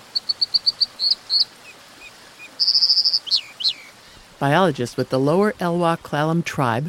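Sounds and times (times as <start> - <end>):
American dipper calling: 0.0 - 4.2
steady hiss: 0.0 - 6.8
speech: 4.4 - 6.8.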